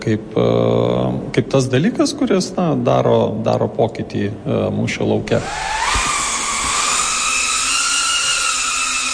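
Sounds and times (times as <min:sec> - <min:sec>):
speech: 0:00.0 - 0:05.8
drone propellers buzzing in flight at an indoor drone-piloting center in Latvia: 0:05.4 - 0:09.1.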